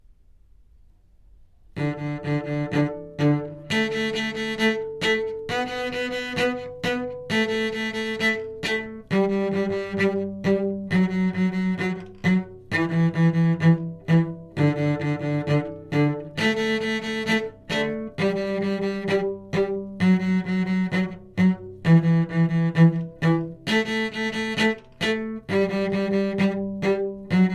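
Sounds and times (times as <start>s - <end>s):
cello: 1.7s - 27.5s.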